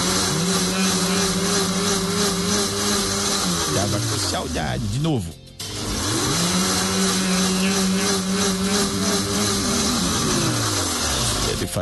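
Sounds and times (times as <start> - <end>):
blender motor blending condensed milk, coconut milk, milk and eggs: 0.0 - 4.9, 5.6 - 11.7
speech: 4.6 - 5.4.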